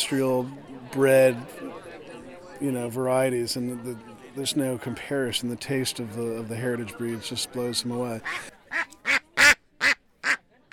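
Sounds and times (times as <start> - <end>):
speech: 0.1 - 1.7, 2.6 - 8.5
Welsh Harlequin and Cayuga ducks quacking: 8.2 - 10.7.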